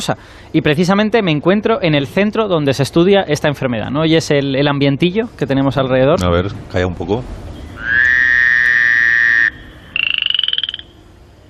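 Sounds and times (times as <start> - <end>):
speech: 0.0 - 7.5
frog croaking: 7.6 - 11.4.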